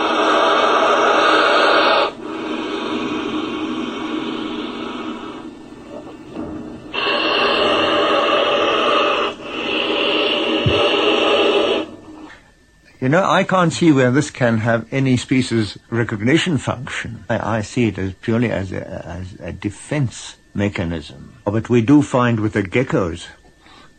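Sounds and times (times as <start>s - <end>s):
crocodile blowing: 0.0s - 12.4s
speech: 13.1s - 23.4s.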